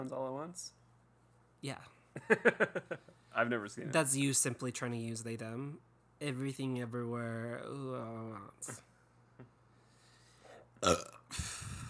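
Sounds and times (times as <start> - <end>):
speech: 0.0 - 0.8, 1.6 - 8.9, 10.8 - 11.7
loud burp: 10.8 - 11.8.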